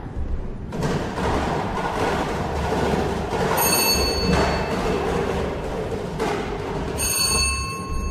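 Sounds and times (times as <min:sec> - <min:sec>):
lottery number drum spun during a prize draw, rolling and rattling: 0:00.7 - 0:08.0
bright ringing tones: 0:03.6 - 0:04.7, 0:07.0 - 0:08.0.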